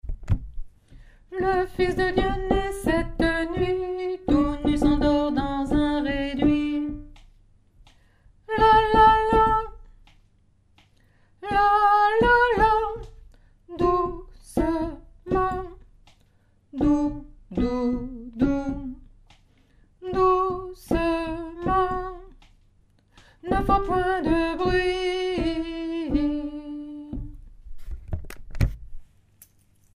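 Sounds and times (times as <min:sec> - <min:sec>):
alto singing: 0:01.3 - 0:07.2, 0:08.5 - 0:09.8, 0:11.4 - 0:15.8, 0:16.8 - 0:19.1, 0:20.0 - 0:22.4, 0:23.4 - 0:27.4.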